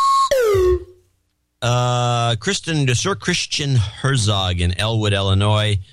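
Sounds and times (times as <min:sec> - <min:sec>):
slide whistle: 0:00.0 - 0:01.0
speech: 0:01.6 - 0:05.9.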